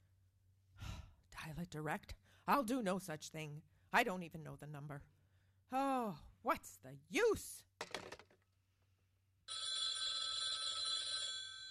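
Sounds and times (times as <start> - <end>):
speech: 1.5 - 7.9
telephone bell ringing with a steady metallic jangle: 9.5 - 11.6.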